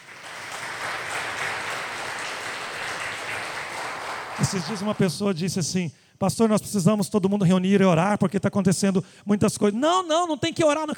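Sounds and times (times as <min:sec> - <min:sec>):
congregation applauding: 0:00.0 - 0:05.2
speech: 0:04.4 - 0:10.9.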